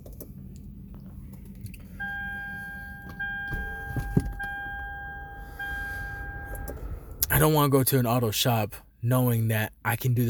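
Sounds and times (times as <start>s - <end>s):
low rumble inside the car: 0.6s - 8.4s
car window rolling up with electric motor whine: 2.1s - 7.3s
speech: 7.4s - 10.2s.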